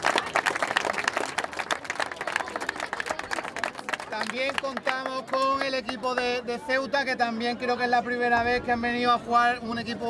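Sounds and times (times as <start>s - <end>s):
audience applause for a rugby team: 0.0s - 5.6s
speech: 4.3s - 10.0s.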